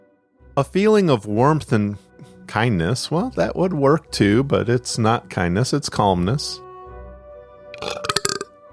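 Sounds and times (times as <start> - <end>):
speech: 0.6 - 6.6
person belching after coffee: 7.8 - 8.5.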